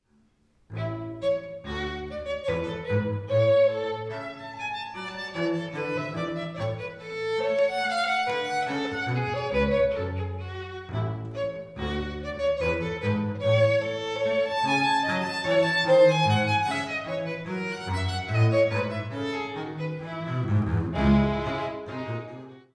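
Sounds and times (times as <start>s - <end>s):
gavotte played as a duo: 0.2s - 22.7s.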